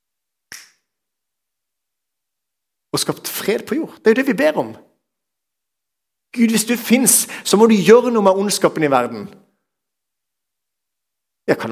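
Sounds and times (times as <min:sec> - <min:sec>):
crisp finger snap: 0:00.5 - 0:01.0
speech: 0:03.0 - 0:04.9, 0:06.3 - 0:09.4, 0:11.5 - 0:11.7.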